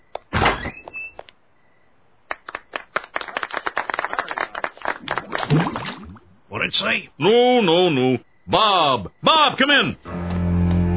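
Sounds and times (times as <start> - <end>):
door banging open: 0.3 - 1.2
rapid scattered claps: 2.3 - 6.0
speech: 6.7 - 10.0.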